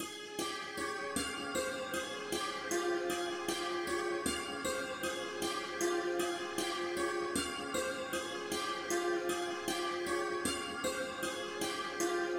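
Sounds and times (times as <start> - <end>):
ethnic santur loop in G minor: 0.0 - 12.3.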